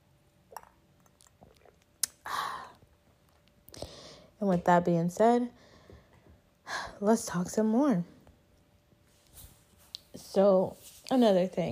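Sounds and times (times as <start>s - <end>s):
wet mouth clicks: 0.5s - 2.3s
soft swallowing: 0.5s - 2.8s
speech: 4.4s - 5.6s, 7.0s - 8.2s, 10.4s - 11.7s.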